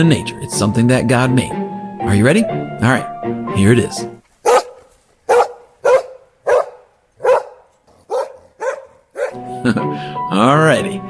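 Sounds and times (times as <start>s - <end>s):
speech: 0.0s - 4.2s, 9.6s - 11.0s
dog barking: 4.4s - 9.4s.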